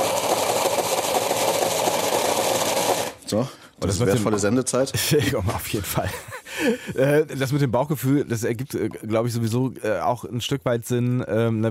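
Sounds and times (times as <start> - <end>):
blender puréeing wild garlic with olive oil: 0.0 - 3.2
speech: 3.3 - 11.6
laughter: 5.0 - 7.3.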